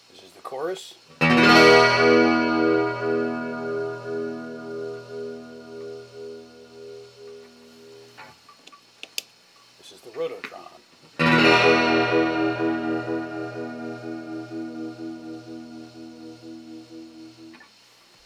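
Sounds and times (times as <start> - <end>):
guitar through Guild G600 Aspen Chorus and Rototron amplifiers: 1.2 - 8.3, 11.2 - 17.7.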